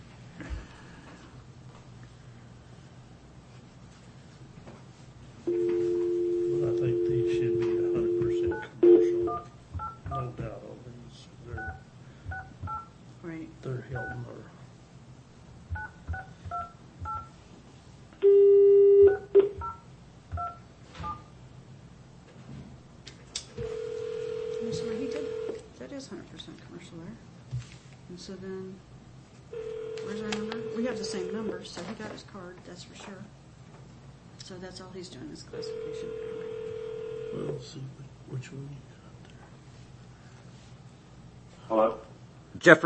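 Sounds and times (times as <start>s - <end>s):
low hum: 0.0s - 42.8s
steady dial-type tone: 5.5s - 9.4s, 23.6s - 25.6s, 29.6s - 31.5s, 35.6s - 37.6s
speech: 31.6s - 33.3s, 34.5s - 36.5s, 37.4s - 38.9s, 42.6s - 42.8s.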